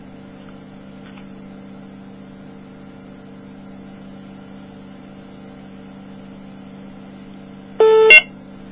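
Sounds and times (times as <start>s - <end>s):
faint steady hum: 0.0s - 8.6s
electronic caller ID beep on a phone line during a three-way call: 7.8s - 8.3s.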